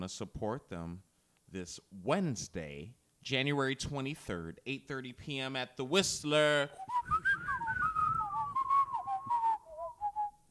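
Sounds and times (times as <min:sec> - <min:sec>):
speech: 0:00.0 - 0:07.3
person whistling a wandering, bending melody: 0:06.8 - 0:10.4.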